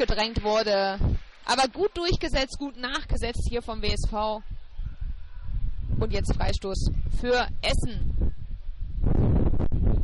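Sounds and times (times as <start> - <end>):
speech: 0.0 - 4.5, 6.0 - 8.4
loud rumbling wind buffeting an outdoor microphone: 0.0 - 10.0.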